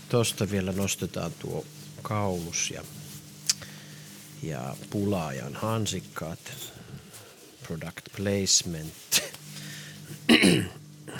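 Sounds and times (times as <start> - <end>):
quiet hum: 0.0 - 11.1
speech: 0.1 - 3.0, 4.4 - 6.9, 7.7 - 9.3
raspy throat clearing: 10.3 - 11.1.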